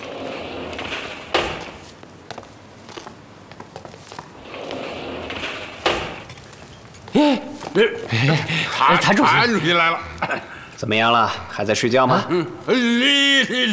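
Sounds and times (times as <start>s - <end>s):
door opening with heavy clunks and rattling: 0.0s - 1.9s, 4.5s - 6.7s
scraping and shuffling: 0.0s - 8.3s
laughter: 7.2s - 10.6s, 12.1s - 13.7s
speech: 7.8s - 13.7s.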